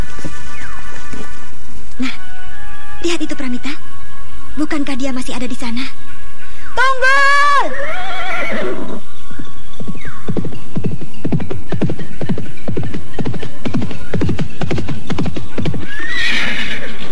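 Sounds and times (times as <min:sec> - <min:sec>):
hooves clip-clopping: 0:00.0 - 0:02.0, 0:09.6 - 0:17.1
speech: 0:03.1 - 0:03.8, 0:04.6 - 0:06.2, 0:06.8 - 0:09.0
horse neighing: 0:07.7 - 0:09.0, 0:15.9 - 0:17.1.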